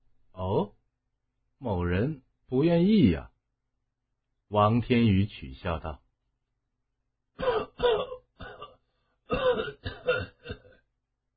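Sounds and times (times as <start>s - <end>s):
speech: 1.6s - 3.3s, 4.5s - 6.0s
harsh coughing from inside a room: 7.4s - 10.8s.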